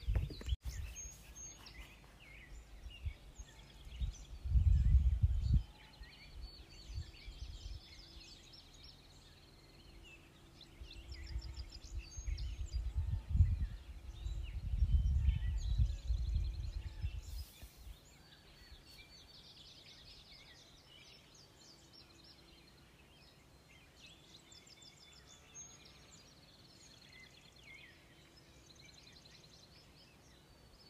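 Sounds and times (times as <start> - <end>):
low rumbling wind: 0.0 - 22.0
several different kinds of birds calling and chirping outdoors: 0.0 - 30.8.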